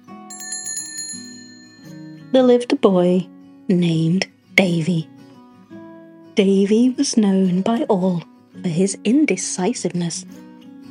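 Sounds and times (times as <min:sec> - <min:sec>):
bicycle bell ringing: 0:00.3 - 0:02.5
speech: 0:02.3 - 0:05.1, 0:06.4 - 0:10.4.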